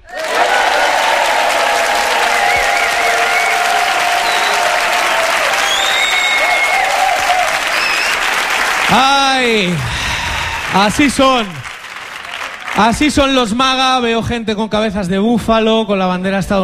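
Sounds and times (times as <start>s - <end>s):
large live crowd at a comedy talk show cheering and applauding: 0.0s - 13.5s
high whistles from a crowd: 2.1s - 8.5s
speech: 8.9s - 9.9s, 10.7s - 11.6s, 12.8s - 16.6s.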